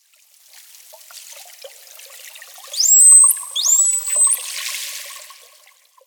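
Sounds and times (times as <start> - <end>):
bottlenose dolphins: 2.8 - 4.5.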